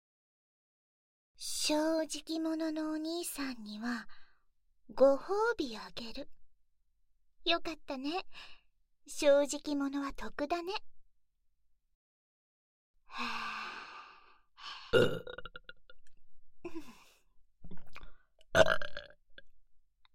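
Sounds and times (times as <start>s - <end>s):
speech: 1.4s - 4.2s, 4.9s - 6.4s, 7.4s - 10.9s, 13.1s - 13.6s, 14.6s - 15.4s, 18.6s - 19.0s
person burping: 14.9s - 15.9s, 17.8s - 19.2s.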